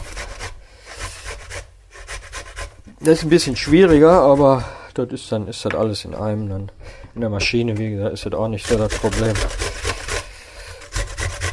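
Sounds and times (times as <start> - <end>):
onion being grated by hand: 0.0 - 4.8, 7.6 - 11.5
speech: 3.0 - 9.6.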